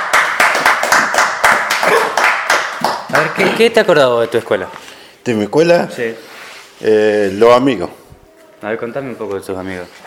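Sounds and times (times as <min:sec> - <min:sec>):
audience applause at a school celebration: 0:00.0 - 0:03.4
speech: 0:03.2 - 0:08.0, 0:08.6 - 0:10.0.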